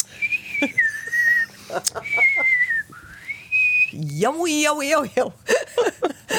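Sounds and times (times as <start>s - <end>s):
person whistling a slow melody: 0.0s - 4.0s
speech: 1.7s - 2.6s, 3.9s - 6.3s.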